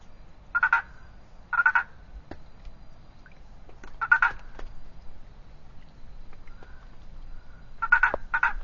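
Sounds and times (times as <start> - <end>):
Boana prasina treefrog rattling call: 0.5 - 2.0, 4.0 - 4.5, 7.4 - 8.6.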